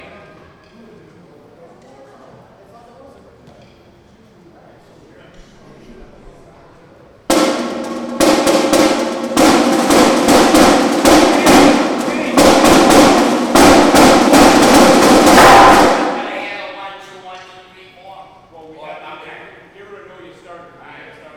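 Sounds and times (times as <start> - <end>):
drum intro: 7.3 - 16.7.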